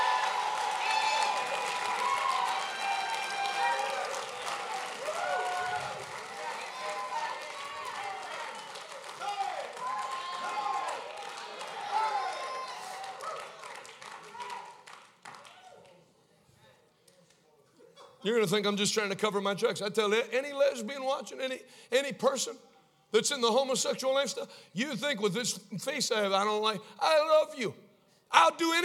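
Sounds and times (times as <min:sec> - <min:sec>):
large audience clapping: 0:00.0 - 0:16.1
speech: 0:18.2 - 0:28.8.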